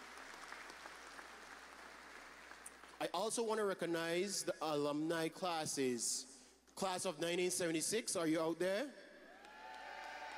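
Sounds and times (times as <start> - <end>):
faint audience applause at a high school ceremony: 0.0 - 3.0, 9.4 - 10.3
speech: 3.0 - 9.1.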